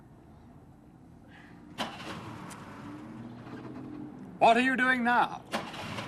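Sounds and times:
car engine starting and idling outdoors: 1.6s - 4.6s, 5.3s - 6.0s
speech: 4.4s - 5.6s.

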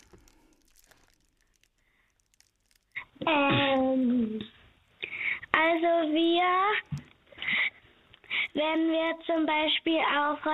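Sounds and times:
plastic bag crinkling and rustling: 0.0s - 4.0s
speech: 3.3s - 4.5s, 5.6s - 6.8s, 8.6s - 10.5s.

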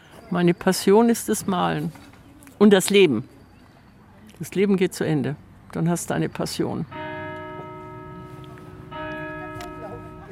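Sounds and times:
speech: 0.3s - 3.3s, 4.4s - 7.0s
church bells ringing: 6.8s - 10.3s.

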